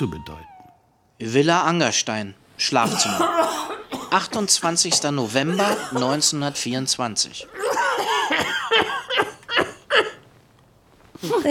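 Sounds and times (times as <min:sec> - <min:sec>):
speech: 0:00.0 - 0:00.5, 0:01.2 - 0:08.9, 0:11.2 - 0:11.4
man coughing in a villa bedroom: 0:02.8 - 0:06.5, 0:07.4 - 0:10.2.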